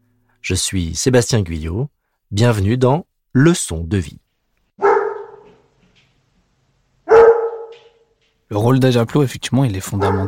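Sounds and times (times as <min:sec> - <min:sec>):
speech: 0:00.4 - 0:04.2, 0:08.5 - 0:10.2
guide dog barking: 0:04.8 - 0:05.7, 0:07.0 - 0:08.1, 0:09.9 - 0:10.2.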